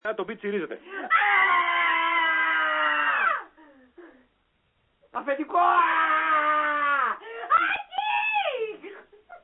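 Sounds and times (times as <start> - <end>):
speech: 0.1 - 1.6, 5.2 - 6.4
human scream recorded by a phone and played back: 0.9 - 3.6, 5.6 - 8.6.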